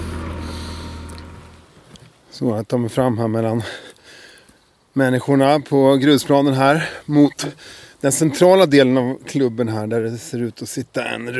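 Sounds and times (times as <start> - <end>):
low boat engine rumble at a boat club during spring boat launching: 0.0 - 2.1
speech: 2.3 - 3.9, 5.0 - 11.3.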